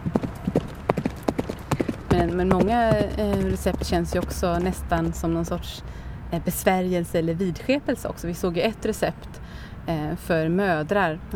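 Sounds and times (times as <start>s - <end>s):
horse hooves galloping: 0.0s - 5.9s
speech: 2.2s - 11.3s.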